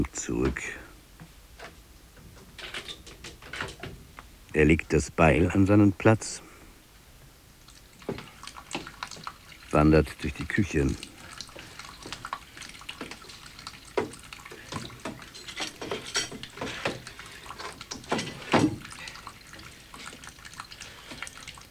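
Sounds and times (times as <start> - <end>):
speech: 0.0 - 0.9, 4.5 - 6.4, 9.7 - 11.1
water running from a kitchen tap: 7.6 - 21.6.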